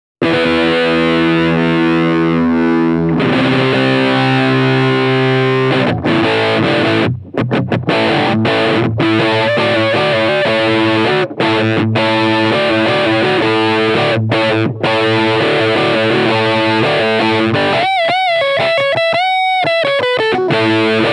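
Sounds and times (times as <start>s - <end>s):
Roland Microcube GX guitar combo amplifier with brit tone: 0.2s - 21.1s.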